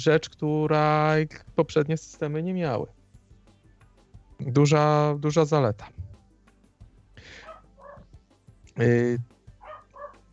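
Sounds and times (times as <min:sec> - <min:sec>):
speech: 0:00.0 - 0:03.0, 0:04.4 - 0:06.0, 0:08.8 - 0:09.3
dogs barking: 0:07.3 - 0:08.1, 0:09.6 - 0:10.3.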